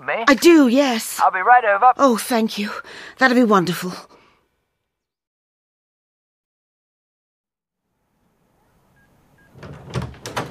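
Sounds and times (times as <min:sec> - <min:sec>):
speech: 0:00.1 - 0:04.1
door opening and closing: 0:09.4 - 0:10.4.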